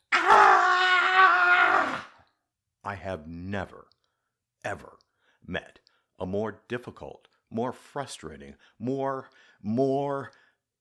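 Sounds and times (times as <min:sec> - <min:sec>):
person giving a primal scream of frustration: 0:00.0 - 0:02.2
speech: 0:02.9 - 0:04.0, 0:04.6 - 0:10.4.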